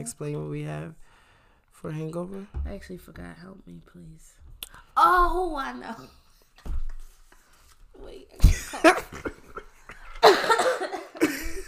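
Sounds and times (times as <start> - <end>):
speech: 0.0 - 1.1, 1.8 - 6.8, 8.0 - 9.4
hungover person coughing: 10.2 - 11.6.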